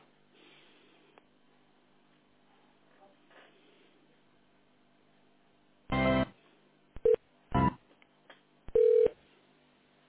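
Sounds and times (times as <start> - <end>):
short buzzy electronic telephone line tones during call transfer: 8.8 - 9.2.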